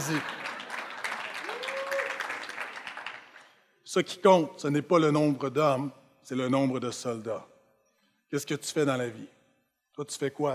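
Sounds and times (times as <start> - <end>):
speech: 0.0 - 0.4, 3.9 - 7.5, 8.3 - 9.4, 10.0 - 10.5
crowd applauding: 0.0 - 3.6.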